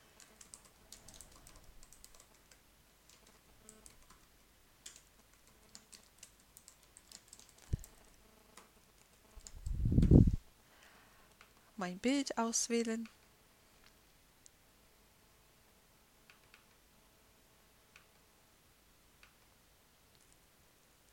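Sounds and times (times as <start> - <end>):
typing on a computer keyboard while entering data: 0.2 - 9.8, 16.3 - 16.8
speech: 11.8 - 13.2.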